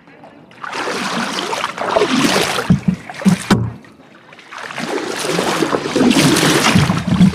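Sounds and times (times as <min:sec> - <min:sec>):
water sloshing and splashing around a small punt boat poled along a river: 0:00.1 - 0:07.3
knocking thumps of a punt boat: 0:02.6 - 0:03.8.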